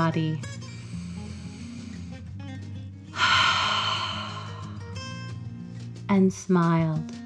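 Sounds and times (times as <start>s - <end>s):
speech: 0.0s - 0.6s, 6.1s - 7.2s
deep calming breath in and out: 0.6s - 2.3s, 3.2s - 5.0s.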